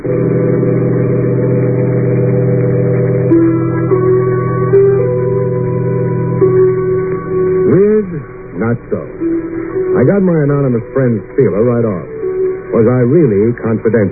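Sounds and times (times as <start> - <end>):
heavy bus engine accelerating through gear changes: 0.0 - 13.5
speech: 10.0 - 12.2, 12.8 - 14.1.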